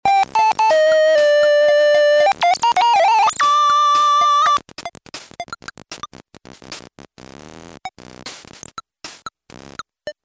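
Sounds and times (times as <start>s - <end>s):
rhythmic music: 0.1s - 4.6s.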